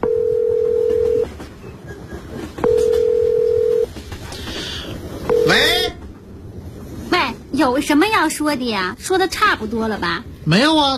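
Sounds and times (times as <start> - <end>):
ringback tone of an outgoing call to a number found on a lost mobile phone: 0.0 - 1.3, 2.6 - 3.9, 5.3 - 5.9
speech: 7.8 - 10.9.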